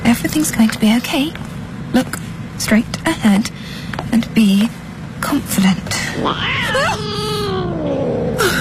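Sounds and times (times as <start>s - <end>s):
speech: 0.2s - 7.3s
cat meowing: 6.1s - 8.5s.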